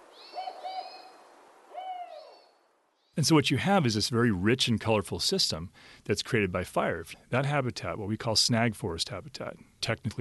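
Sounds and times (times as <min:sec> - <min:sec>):
spotted owl hooting: 0:00.0 - 0:02.6
speech: 0:03.2 - 0:10.1.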